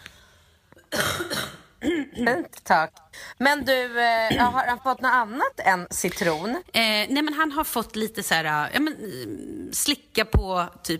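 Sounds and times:
person coughing in harsh bursts: 0.9s - 2.5s, 4.3s - 4.7s
speech: 2.2s - 10.9s.

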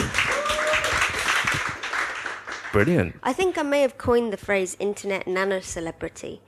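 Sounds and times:
crowd applauding: 0.0s - 3.1s
speech: 2.8s - 6.4s.

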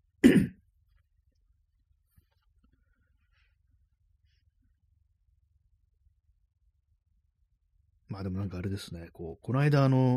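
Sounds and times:
short rough guttural throat clearing: 0.2s - 0.6s
speech: 8.2s - 10.1s.

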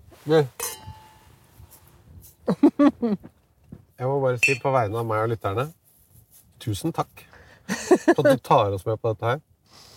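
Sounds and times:
speech: 0.2s - 0.6s, 2.5s - 3.4s, 4.0s - 5.8s, 6.6s - 7.3s, 7.9s - 9.5s
wine glasses of red monastery wine clinking in a toast: 0.6s - 1.3s, 4.4s - 4.9s
laughter: 7.7s - 8.4s.

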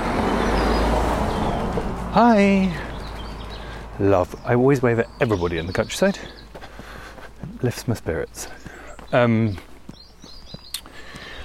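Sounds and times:
car driving past with engine rumble and tyre hiss: 0.0s - 4.0s
speech: 2.1s - 2.8s, 4.0s - 6.4s, 7.6s - 9.7s.

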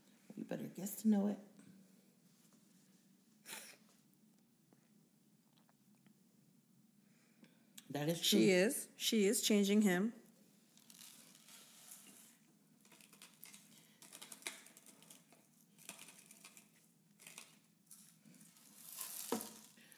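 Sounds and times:
speech: 0.5s - 1.5s, 7.9s - 10.2s
steady granular crackle and rustle: 10.7s - 19.9s.

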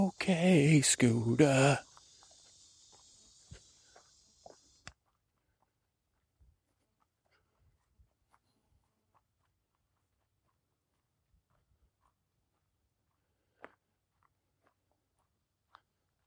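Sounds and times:
steady high insect buzz: 0.0s - 5.0s
speech: 0.2s - 1.9s
footsteps crunching through woodland undergrowth: 1.6s - 5.7s.

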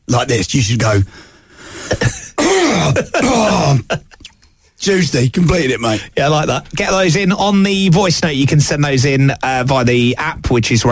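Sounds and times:
speech: 0.1s - 1.3s, 1.9s - 10.9s
person giving a deliberate exaggerated cough: 1.8s - 4.3s.

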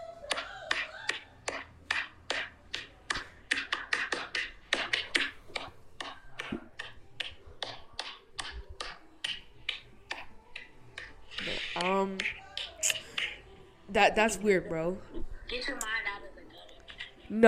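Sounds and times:
hand slapping a stomach: 0.3s - 13.4s
speech: 14.0s - 16.0s.

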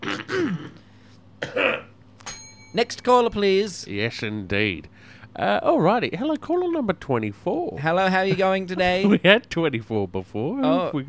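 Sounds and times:
person clearing throat: 0.0s - 2.0s
person coughing: 0.0s - 2.0s
speech: 2.8s - 11.0s.

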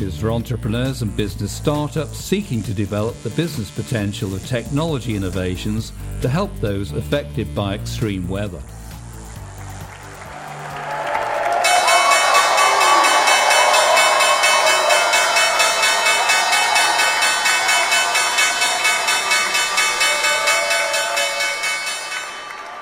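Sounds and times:
speech: 0.0s - 8.8s
crowd applause and cheering: 9.3s - 22.8s
stock exchange bell ringing for a newly listed company's debut: 11.6s - 22.8s.

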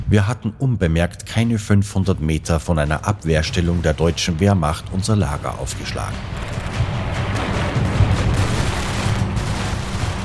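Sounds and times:
speech: 0.1s - 6.7s
anti-aircraft guns and machine guns firing in a sustained barrage: 6.3s - 10.2s.

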